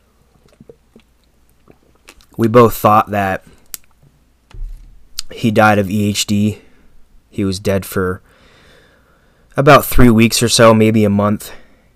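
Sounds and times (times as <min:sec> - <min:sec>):
person sipping water: 0:00.3 - 0:02.4
speech: 0:02.4 - 0:03.6, 0:05.4 - 0:06.7, 0:07.4 - 0:08.3, 0:09.6 - 0:11.6.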